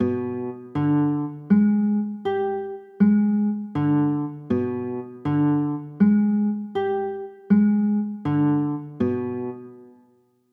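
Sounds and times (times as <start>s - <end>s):
G7b9 chords: 0.0s - 10.0s.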